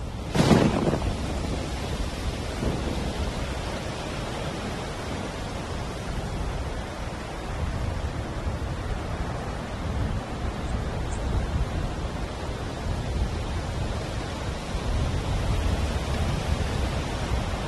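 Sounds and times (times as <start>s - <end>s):
steady rain in a thunderstorm: 0.1s - 17.6s
loud sudden thunderclap rumbling: 0.2s - 5.3s.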